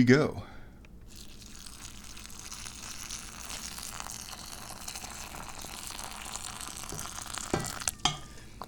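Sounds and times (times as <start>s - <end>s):
speech: 0.0s - 0.5s
water pouring into a teapot: 1.1s - 8.1s.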